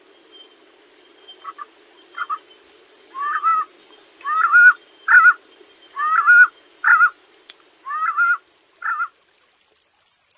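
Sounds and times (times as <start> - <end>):
Collared Puffbird song: 0.0 - 9.1.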